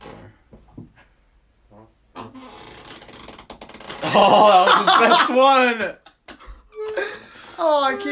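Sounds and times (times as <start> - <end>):
chair creaking: 0.0 - 0.9, 1.7 - 4.3
laughter: 4.0 - 6.0
speech: 4.1 - 6.0, 7.6 - 8.1.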